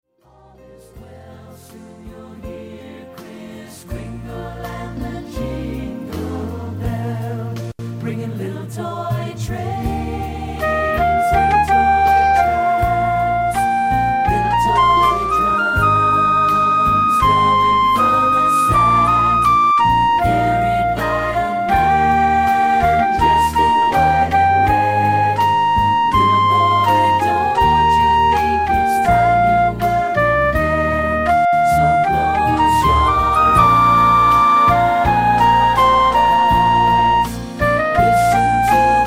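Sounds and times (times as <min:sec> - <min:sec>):
person singing: 0:04.9 - 0:39.0
flute part with vocals: 0:10.3 - 0:39.0.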